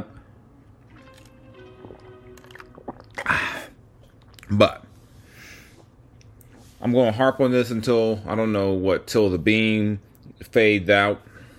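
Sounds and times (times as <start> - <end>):
person sipping and slurping a drink: 0.9 - 4.5
wet mouth clicks: 1.0 - 4.5
speech: 4.5 - 4.9, 6.8 - 11.3.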